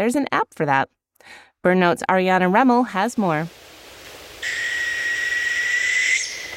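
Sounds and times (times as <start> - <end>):
speech: 0.0 - 3.7
northern hawk owl high whistled call: 4.4 - 6.5.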